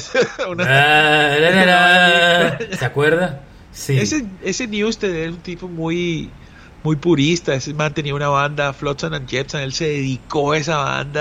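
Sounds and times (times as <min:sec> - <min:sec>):
laughter: 0:00.0 - 0:04.2
speech: 0:00.0 - 0:11.1
human voice imitating a sheep bleating: 0:00.6 - 0:04.2.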